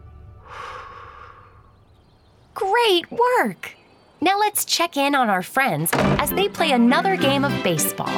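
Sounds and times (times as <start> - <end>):
slow deep breath: 0.3 - 1.9
speech: 2.6 - 8.1.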